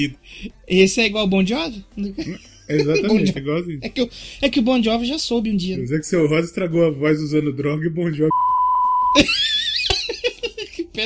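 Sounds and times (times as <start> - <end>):
speech: 0.0 - 8.6, 9.2 - 9.6
steady pure censor bleep: 8.3 - 9.2
high-pitched laughter: 9.2 - 11.0.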